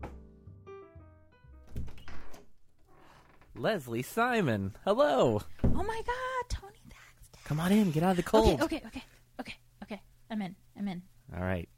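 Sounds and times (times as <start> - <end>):
solid thunks of a front door: 1.6 - 2.6, 5.5 - 6.0
front door creaking open: 1.6 - 3.7
speech: 3.6 - 6.2, 7.5 - 9.6.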